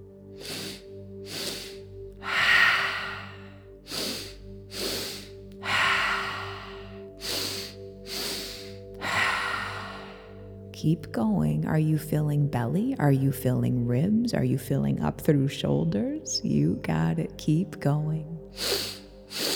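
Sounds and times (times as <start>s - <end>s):
quick sniffs in through the nose: 0.4s - 3.2s, 3.9s - 8.9s, 18.6s - 19.5s
long audible exhale through the mouth: 0.4s - 10.4s, 18.6s - 19.5s
speech: 10.8s - 18.7s.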